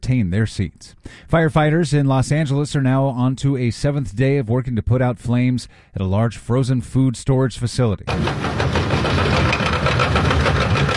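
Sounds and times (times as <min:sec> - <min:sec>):
speech: 0:00.1 - 0:09.4
skid steer loader diesel engine clearing debris around a burned warehouse in Los Angeles: 0:08.1 - 0:10.9.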